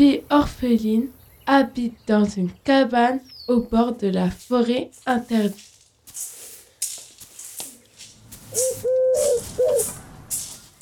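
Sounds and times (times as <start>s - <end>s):
speech: 0.0s - 6.3s, 8.5s - 10.0s
soft rustling: 4.3s - 10.8s
turtle dove cooing: 8.6s - 10.0s.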